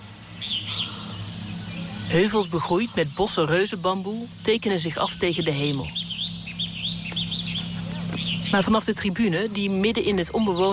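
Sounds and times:
dawn chorus of birds in a jungle: 0.0 - 10.7
insects in a jungle: 0.0 - 10.7
speech: 2.1 - 6.0, 8.5 - 10.7.

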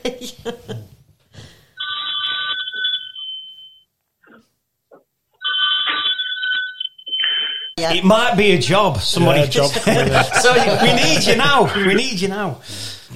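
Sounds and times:
speech: 0.0 - 0.8, 7.8 - 13.1
telephone bell ringing: 1.8 - 3.8, 5.4 - 7.8, 10.9 - 12.0
laughter: 9.3 - 12.3.

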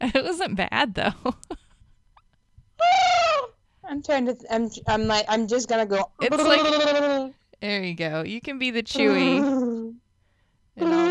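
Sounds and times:
speech: 0.0 - 1.5, 2.8 - 10.0, 10.8 - 11.1
voice imitating a seagull call with a nasal high-pitched squawk: 2.8 - 3.6, 9.0 - 10.0, 10.8 - 11.1.

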